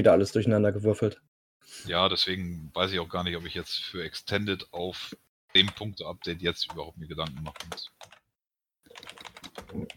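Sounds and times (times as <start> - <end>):
speech: 0.0 - 8.2, 9.0 - 9.9
typing on a computer keyboard: 5.6 - 8.2, 8.9 - 9.9.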